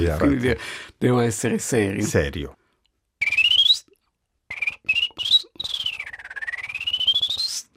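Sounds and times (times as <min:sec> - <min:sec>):
speech: 0:00.0 - 0:02.6
person whistling a virtuoso trilling melody imitating a bird: 0:03.2 - 0:03.9, 0:04.5 - 0:07.7.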